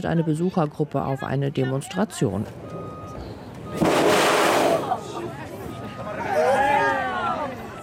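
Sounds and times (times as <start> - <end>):
speech: 0.0 - 2.8
crowd murmuring and exclaiming: 0.0 - 7.8
artificial geyser erupting from ground pipe: 3.8 - 5.0.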